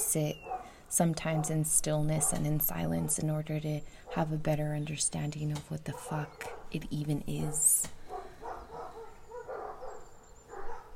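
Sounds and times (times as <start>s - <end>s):
speech: 0.1s - 8.0s
dogs barking: 0.3s - 3.4s, 4.0s - 4.3s, 5.9s - 6.8s, 7.4s - 10.9s.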